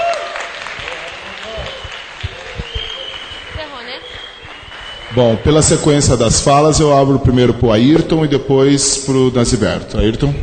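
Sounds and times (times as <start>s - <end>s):
audience clapping: 0.0s - 6.2s
speech: 5.1s - 10.4s.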